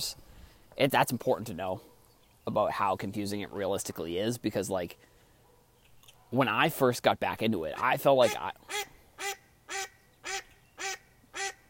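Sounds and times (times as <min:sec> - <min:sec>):
speech: 0:00.0 - 0:00.2, 0:00.8 - 0:05.1, 0:06.3 - 0:09.3
faint noise: 0:00.0 - 0:11.6
duck quacking: 0:07.7 - 0:11.6.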